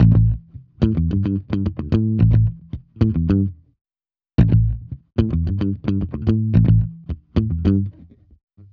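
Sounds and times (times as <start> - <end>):
bass loop in A7: 0.0 - 3.6, 4.4 - 8.0.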